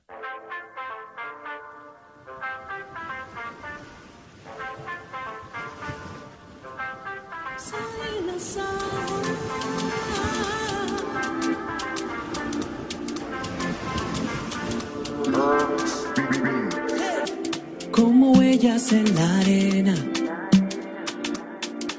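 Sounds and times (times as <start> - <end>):
light plucked melody: 9.0 - 21.9
band with steady rhythmic percussion: 9.8 - 21.9
speech: 18.6 - 20.2.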